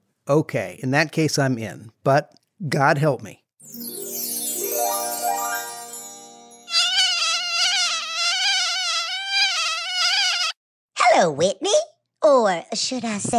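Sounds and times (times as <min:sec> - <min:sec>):
speech: 0:00.3 - 0:03.8, 0:11.2 - 0:13.3
mosquito buzzing with high-pitched whine: 0:06.7 - 0:10.6.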